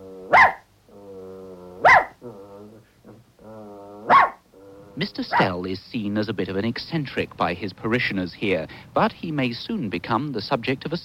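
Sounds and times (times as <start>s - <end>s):
dog growling low: 0.0s - 5.6s
dog barking sharply: 0.3s - 0.7s, 1.8s - 2.2s, 4.1s - 4.4s
speech: 5.0s - 11.0s.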